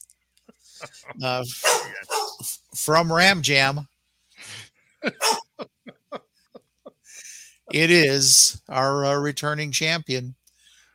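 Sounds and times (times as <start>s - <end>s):
laughter: 0.5s - 2.2s, 4.4s - 8.2s
speech: 0.8s - 5.4s, 7.7s - 10.4s
dog barking in an excited burst: 1.6s - 2.4s, 5.2s - 5.5s.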